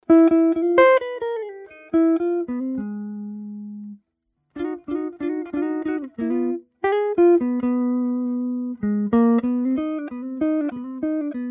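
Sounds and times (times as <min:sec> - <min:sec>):
jazz guitar without EQ: 0:00.0 - 0:11.4.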